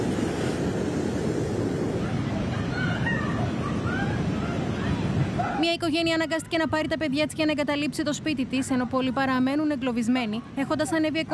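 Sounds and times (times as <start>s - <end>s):
floodwater rushing through a village: 0.0s - 6.6s
speech: 5.7s - 11.3s.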